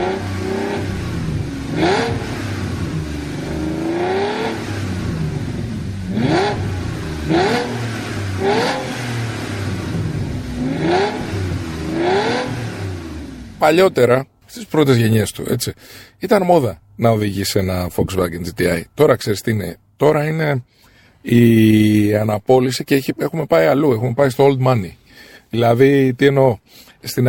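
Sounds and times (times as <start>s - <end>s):
rear-mounted six-litre W12 sports car engine revving: 0.0s - 13.6s
speech: 13.6s - 27.2s.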